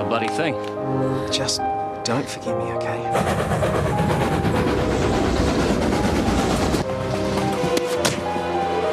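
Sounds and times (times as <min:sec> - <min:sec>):
train rumbling past: 0:00.1 - 0:08.8
speech: 0:00.2 - 0:04.9
train cars clanking: 0:02.8 - 0:08.8.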